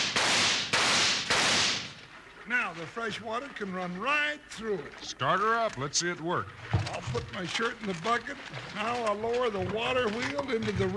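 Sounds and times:
gunshots fired to shoot holes in a bucket: 0.0s - 2.1s
speech: 2.8s - 10.9s.

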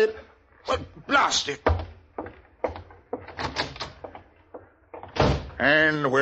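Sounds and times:
speech: 0.0s - 1.9s, 5.6s - 6.2s
knocks and thuds: 1.6s - 5.6s
door opened and pushed shut: 1.6s - 5.7s.

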